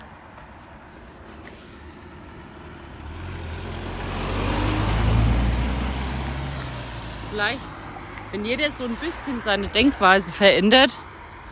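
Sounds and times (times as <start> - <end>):
car passing by with engine hum and tire noise: 1.3 - 10.4
speech: 7.4 - 11.1.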